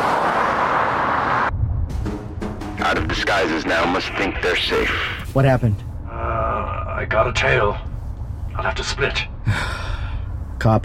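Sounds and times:
cars moving on a road: 0:00.0 - 0:02.6
deep lower engine rumble: 0:01.5 - 0:10.8
speech: 0:02.9 - 0:05.9, 0:07.1 - 0:07.9, 0:08.6 - 0:09.8, 0:10.6 - 0:10.8.

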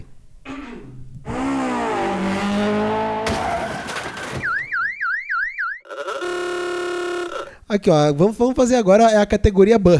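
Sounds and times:
warbling alarm-like wail: 0:01.2 - 0:07.6
sweeping electronic tones in a podcast jingle sting: 0:04.4 - 0:07.5
buzzy sustained tone: 0:05.9 - 0:07.6
speech: 0:07.7 - 0:09.9.

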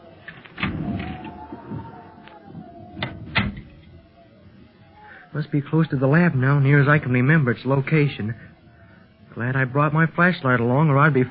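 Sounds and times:
door creaking open on a squeaky hinge: 0:00.2 - 0:04.0
speech: 0:05.4 - 0:08.5, 0:09.4 - 0:11.2.

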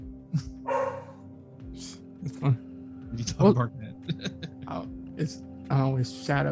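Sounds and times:
dog barking: 0:00.7 - 0:01.2
speech: 0:02.2 - 0:06.5
laughter: 0:03.2 - 0:04.8.

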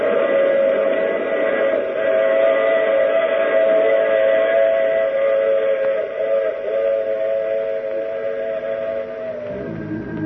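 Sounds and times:
loud sustained steam whistle blaring: 0:00.0 - 0:10.2
rumble of a moving train: 0:00.0 - 0:10.2.

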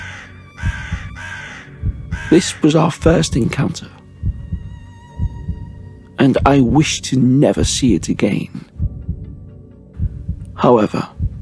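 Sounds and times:
crow cawing harshly as it flies away: 0:00.0 - 0:02.8
speech: 0:02.3 - 0:04.0, 0:06.2 - 0:08.7, 0:10.6 - 0:11.1.

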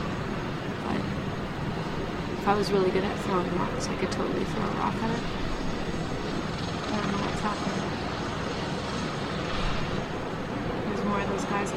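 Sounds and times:
helicopter engine droning on the ground: 0:00.0 - 0:11.7
speech: 0:02.4 - 0:05.5, 0:07.0 - 0:08.2, 0:11.0 - 0:11.7.

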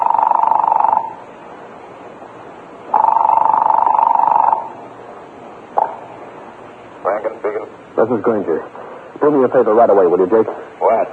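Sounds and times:
telephone call ringing through the line: 0:00.0 - 0:01.2, 0:02.9 - 0:04.8
speech: 0:08.0 - 0:11.1.

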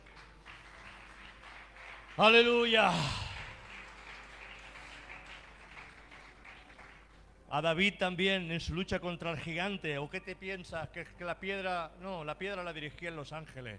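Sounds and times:
audience clapping at a church service: 0:00.0 - 0:07.3
speech: 0:02.2 - 0:03.2, 0:07.6 - 0:13.7
sung shout: 0:02.2 - 0:03.6.

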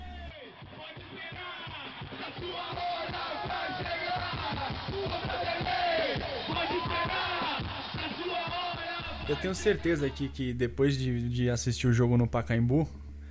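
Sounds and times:
football players chanting a rhythmic taunt: 0:00.0 - 0:10.1
football players shouting and yelling: 0:01.4 - 0:10.2
speech: 0:09.3 - 0:13.0.

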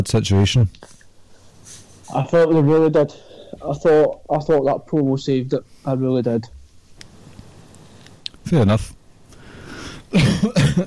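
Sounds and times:
speech: 0:00.0 - 0:01.0, 0:02.1 - 0:06.6, 0:08.5 - 0:09.0, 0:10.1 - 0:10.8
quiet hiss: 0:00.0 - 0:10.8
person with a lingering cold coughing: 0:10.1 - 0:10.8.

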